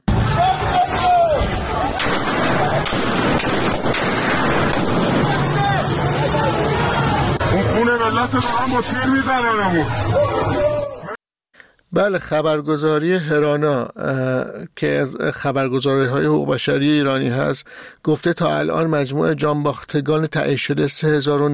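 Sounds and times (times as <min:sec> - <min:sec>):
noisy hissing street scene: 0:00.1 - 0:11.1
crowd of protesters shouting and yelling in a street: 0:00.1 - 0:11.2
bursts of gunfire from government forces shooting at protesters: 0:01.8 - 0:06.3
speech: 0:08.2 - 0:10.6, 0:11.9 - 0:21.5.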